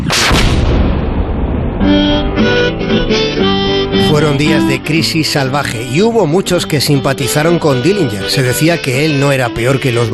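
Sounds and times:
cannon boom: 0.0 - 4.0
sustained horn-like musical tones: 1.8 - 10.1
speech: 4.3 - 10.1.

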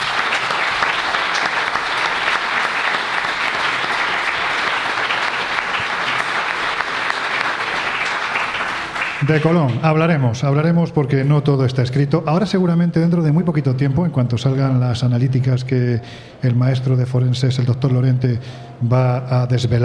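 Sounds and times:
sizable crowd applauding: 0.0 - 10.2
speech: 9.3 - 19.8.

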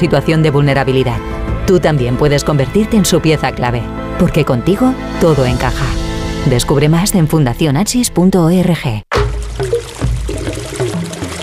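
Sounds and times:
speech: 0.0 - 9.1
water running from a tap: 9.2 - 11.4.

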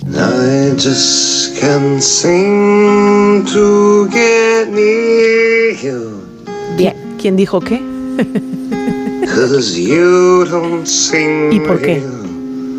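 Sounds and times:
male artist singing long sustained notes: 0.0 - 6.3, 9.2 - 12.4
soft acoustic song accompaniment: 0.0 - 12.7
speech: 0.4 - 6.0, 6.7 - 8.7, 9.3 - 12.2
laughter: 8.2 - 9.8, 10.4 - 11.1.

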